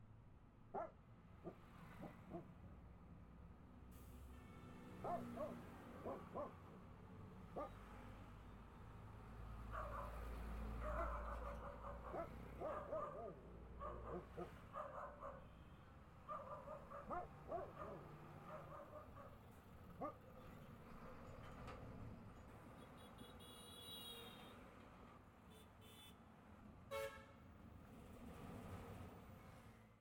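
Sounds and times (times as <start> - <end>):
dog barking: 0.7 - 2.5, 5.0 - 6.6, 7.5 - 7.8, 9.6 - 15.5, 16.2 - 19.4, 20.0 - 20.2
truck traffic after active noise cancellation: 0.8 - 29.9
horns honking: 22.8 - 24.6, 25.5 - 26.2, 26.9 - 27.4.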